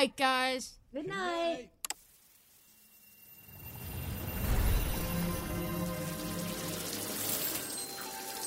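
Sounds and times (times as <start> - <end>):
speech: 0.0 - 1.8
hot water running from a tap: 4.9 - 8.4.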